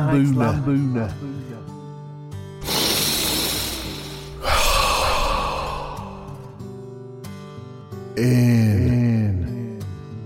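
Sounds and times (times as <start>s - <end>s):
speech: 0.0s - 1.4s, 8.2s - 9.4s
person giving a voiced falling sigh: 2.6s - 6.7s
slow deep exhaling breaths during a guided breathing exercise: 2.6s - 6.7s.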